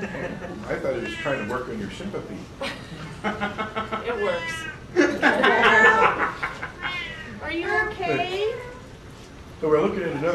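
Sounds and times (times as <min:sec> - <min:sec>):
laughter: 0:00.0 - 0:01.2, 0:02.6 - 0:04.4, 0:05.0 - 0:07.0
speech: 0:00.0 - 0:06.0, 0:09.6 - 0:10.3
cat meowing plaintively: 0:01.0 - 0:01.6, 0:04.2 - 0:04.9, 0:06.8 - 0:07.5.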